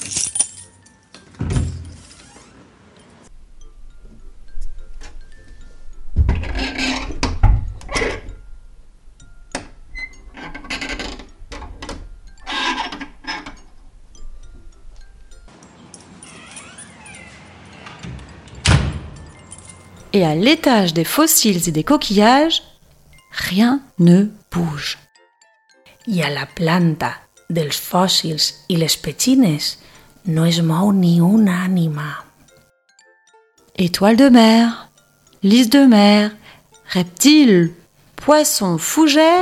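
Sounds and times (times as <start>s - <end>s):
keys jangling as locks are turned: 0.0s - 0.9s, 18.2s - 20.0s
doors thudding shut as guards them: 1.4s - 2.0s, 7.2s - 8.3s, 16.4s - 19.7s
speech: 20.2s - 22.7s, 23.4s - 25.0s, 26.1s - 32.3s, 33.8s - 34.8s, 35.4s - 39.4s.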